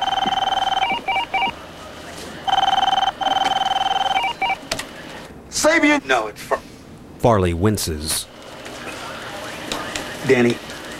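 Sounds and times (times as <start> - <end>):
telephone ringing with an electronic tone: 0.0 - 1.6, 2.5 - 4.6
speech: 5.8 - 6.6, 7.2 - 8.3, 10.3 - 10.6.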